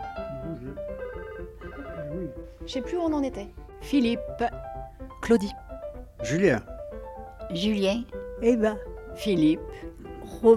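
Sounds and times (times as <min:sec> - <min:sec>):
phone ringtone playing a short electronic melody: 0:01.2 - 0:02.3
speech: 0:02.6 - 0:04.7, 0:05.3 - 0:05.6, 0:06.2 - 0:06.7, 0:07.5 - 0:10.5.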